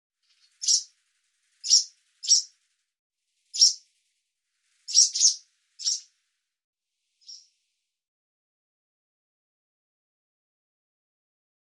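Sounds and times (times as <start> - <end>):
barn swallow giving short sharp chirping calls: 0.4 - 0.9, 1.6 - 2.5, 3.5 - 3.8, 4.8 - 6.1, 7.2 - 7.5.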